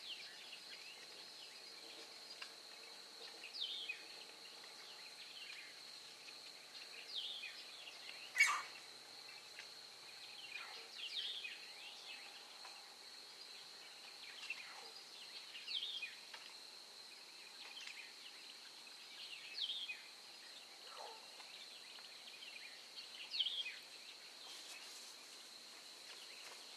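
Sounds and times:
high insect drone on a marsh trail at dawn: 0:00.0 - 0:26.7
bird chirps and calls on a marsh trail at dawn: 0:07.3 - 0:08.8.

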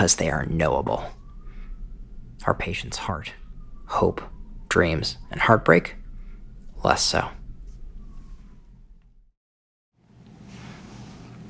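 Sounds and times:
speech: 0:00.0 - 0:01.2, 0:02.4 - 0:06.0, 0:06.8 - 0:07.4
city street noise at night: 0:00.0 - 0:09.2
police siren wailing in city at night: 0:00.0 - 0:09.3.

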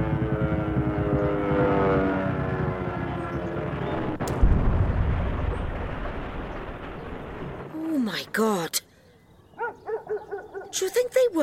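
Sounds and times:
German light bomber engine rumbling drone: 0:00.0 - 0:04.4
sharp crack of a light bomber crashing in a valley: 0:04.1 - 0:08.0
speech: 0:08.4 - 0:08.9, 0:10.8 - 0:11.4.

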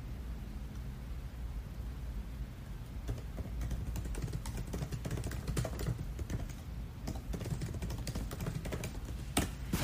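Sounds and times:
constant low hum of noise: 0:00.0 - 0:09.8
typing notes on a computer keyboard: 0:03.0 - 0:09.5.

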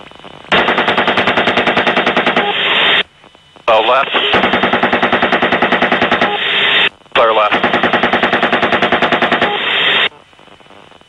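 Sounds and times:
automatic gunfire from a helicopter crew's weapon: 0:00.5 - 0:03.0, 0:04.3 - 0:06.9, 0:07.5 - 0:09.9
speech: 0:03.8 - 0:04.5.

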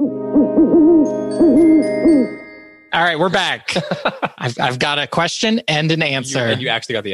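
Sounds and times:
speech: 0:00.4 - 0:07.1
owl hooting: 0:00.6 - 0:02.3
laughter: 0:03.5 - 0:04.8, 0:06.2 - 0:06.8.

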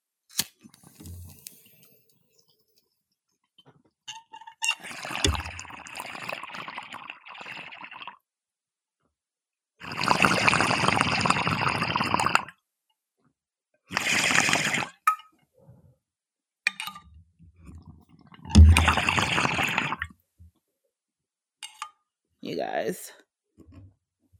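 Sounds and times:
water gurgling in a water pipe while smoking weed: 0:04.7 - 0:08.2, 0:09.8 - 0:12.6, 0:13.9 - 0:15.0, 0:18.2 - 0:20.1
speech: 0:22.6 - 0:23.2.

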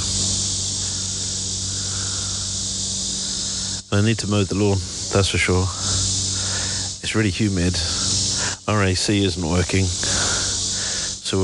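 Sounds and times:
crickets or cicadas droning outdoors in Mount Lebanon on a humid day: 0:00.0 - 0:11.4
low hum: 0:00.0 - 0:11.4
speech: 0:03.9 - 0:06.1, 0:07.1 - 0:08.1, 0:08.7 - 0:10.2.

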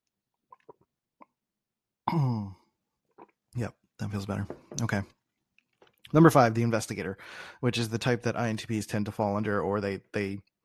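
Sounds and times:
person swallowing gulps of a quick drink: 0:00.5 - 0:01.4, 0:02.1 - 0:03.4
speech: 0:03.6 - 0:05.2, 0:06.1 - 0:10.5
voiced exhale: 0:07.2 - 0:07.6.

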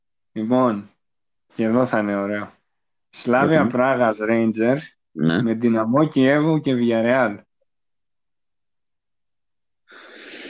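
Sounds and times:
speech: 0:00.4 - 0:00.9, 0:01.5 - 0:07.5
deep breath drawn in close to the mic: 0:09.9 - 0:10.4.

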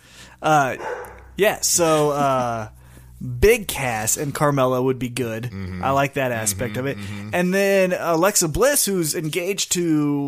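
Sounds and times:
speech: 0:00.4 - 0:10.2
guard dogs barking loudly: 0:00.7 - 0:01.4.

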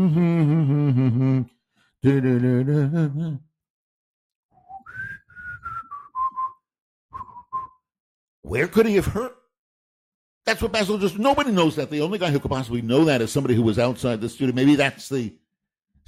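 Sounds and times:
man humming: 0:00.0 - 0:03.5
speech: 0:00.0 - 0:03.5, 0:08.5 - 0:09.4, 0:10.5 - 0:15.4
man whistling a tune of sliding notes: 0:04.5 - 0:07.9.

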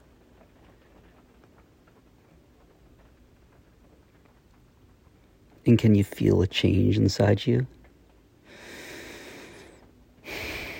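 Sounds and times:
speech: 0:05.6 - 0:07.8
deep breath in and out: 0:08.4 - 0:10.7.

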